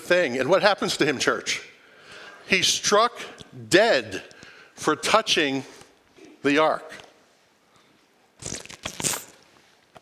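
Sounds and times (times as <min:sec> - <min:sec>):
speech: 0:00.1 - 0:01.7, 0:02.5 - 0:05.8, 0:06.4 - 0:07.0
loud slurping sip of a drink: 0:08.4 - 0:09.4.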